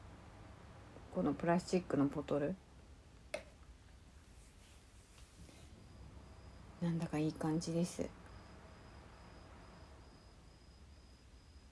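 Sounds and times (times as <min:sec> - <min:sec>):
soft hiss: 0:00.0 - 0:11.7
speech: 0:01.2 - 0:02.6, 0:06.8 - 0:08.2
crickets chirping in autumn: 0:05.4 - 0:11.7.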